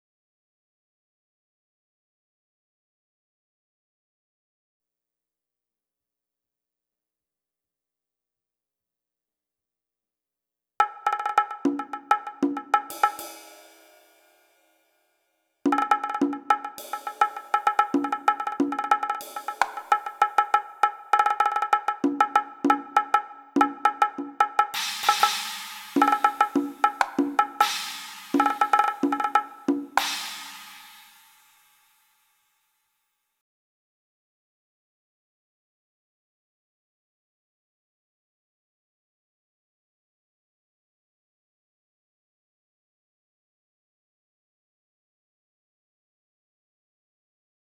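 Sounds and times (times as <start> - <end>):
percussion hit: 10.8 - 14.0, 15.7 - 31.7.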